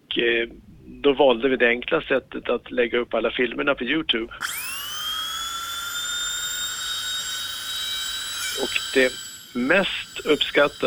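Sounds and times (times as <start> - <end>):
speech: 0.2 - 4.7, 8.6 - 10.8
dentist's drill from Belgium whining at a high steady pitch: 4.4 - 10.8.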